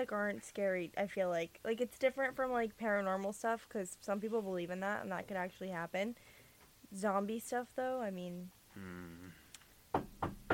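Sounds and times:
speech: 0.0s - 9.4s
knocking on wood: 9.9s - 10.5s.

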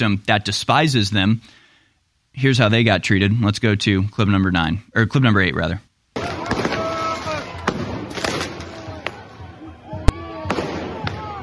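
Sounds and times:
speech: 0.0s - 1.6s, 2.4s - 5.9s
tear gas canisters being fired at protesters: 6.2s - 8.8s
shouting crowd voices: 6.2s - 11.4s.

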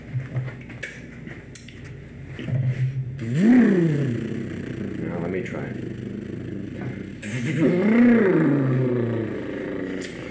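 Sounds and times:
car engine starting after a loose fuse is fixed: 2.8s - 10.2s
speech: 5.4s - 6.0s.

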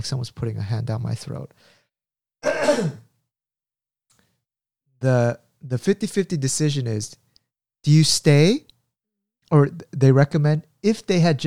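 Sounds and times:
speech: 0.0s - 1.8s, 2.5s - 3.0s, 5.0s - 7.2s, 7.8s - 8.7s, 9.5s - 11.4s
short rough throat clearing: 2.4s - 3.1s.

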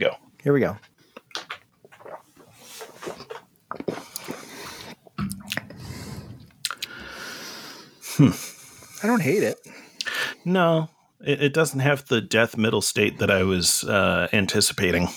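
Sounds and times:
speech: 0.0s - 0.9s, 8.2s - 9.7s, 10.4s - 15.1s
mouth smacking: 1.1s - 7.0s
slurping and swallowing sour beer: 1.1s - 7.0s.

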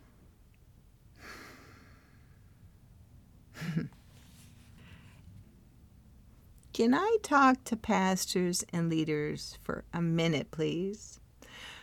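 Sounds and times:
quiet hiss: 0.0s - 7.2s
person breathing in and out during a guided breathing exercise: 1.2s - 2.7s
speech: 6.8s - 11.8s.

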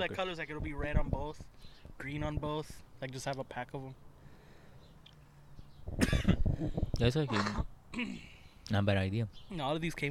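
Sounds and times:
speech: 0.0s - 4.1s, 5.9s - 10.1s
loud harsh cough: 6.0s - 6.4s.

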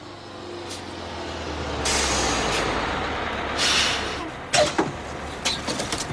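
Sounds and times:
bus engine idling: 0.0s - 6.1s
bus air brakes releasing: 1.8s - 2.8s, 3.5s - 4.3s.

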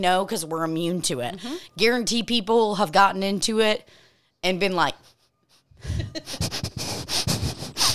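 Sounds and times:
speech: 0.0s - 5.1s, 5.8s - 6.4s
person sniffing the air in quick sniffs: 5.7s - 7.9s.

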